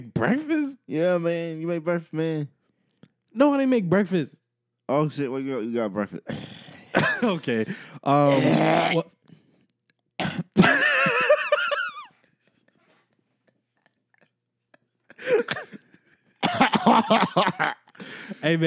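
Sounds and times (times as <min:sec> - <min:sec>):
speech: 0:00.0 - 0:02.6, 0:03.4 - 0:09.2, 0:16.8 - 0:18.6
harsh throaty coughing: 0:06.2 - 0:09.1, 0:10.2 - 0:12.0, 0:15.1 - 0:18.4
laughter: 0:07.0 - 0:09.0, 0:10.6 - 0:18.6.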